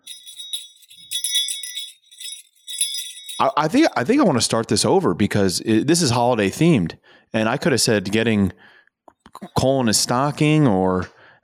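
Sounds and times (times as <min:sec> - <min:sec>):
small jingle bell ringing: 0:00.0 - 0:04.4
speech: 0:03.4 - 0:08.8, 0:09.4 - 0:11.2.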